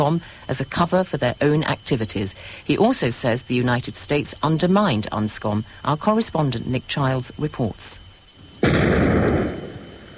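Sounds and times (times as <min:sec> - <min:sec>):
speech: 0:00.0 - 0:08.0, 0:08.6 - 0:09.6
demolition explosion of a biological weapons factory: 0:08.6 - 0:10.1.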